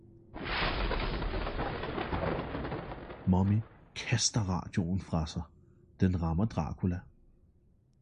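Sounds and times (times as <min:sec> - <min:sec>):
thunder crack and rumble from a lightning strike: 0:00.4 - 0:04.6
speech: 0:03.3 - 0:07.1.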